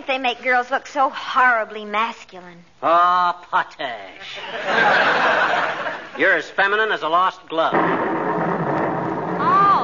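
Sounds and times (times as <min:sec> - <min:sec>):
speech: 0:00.1 - 0:08.1
laughter: 0:04.4 - 0:06.3
loud steady roar of stormy thunder rumbling: 0:07.7 - 0:09.8.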